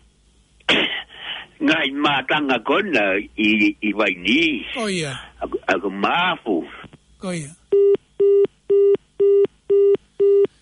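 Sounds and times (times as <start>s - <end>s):
speech: 1.6s - 7.6s
telephone line beeping after a call is cut off: 7.8s - 10.6s.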